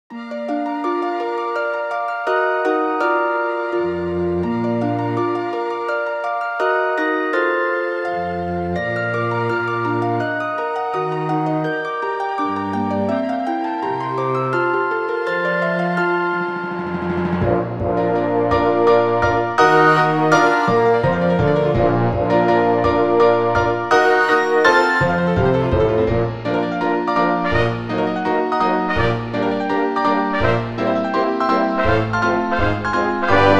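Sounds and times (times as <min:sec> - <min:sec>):
piano, harp and orchestra dialogue: 0:00.1 - 0:33.5.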